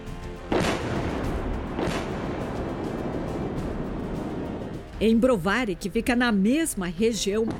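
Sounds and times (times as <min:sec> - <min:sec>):
explosion booms near Kyiv Ukraine: 0:00.5 - 0:04.8
speech: 0:05.0 - 0:07.5.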